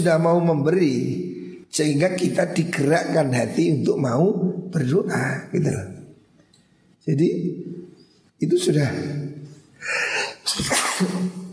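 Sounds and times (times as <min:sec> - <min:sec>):
speech: 0:00.0 - 0:05.9, 0:07.0 - 0:07.8, 0:08.4 - 0:11.4
person sneezing: 0:09.9 - 0:11.5.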